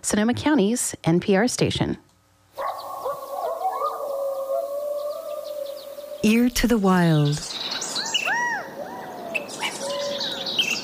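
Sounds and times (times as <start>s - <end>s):
speech: 0.0s - 2.1s, 6.2s - 7.5s
California quail calling: 2.6s - 10.8s
other birds chirping and twittering: 2.6s - 10.8s.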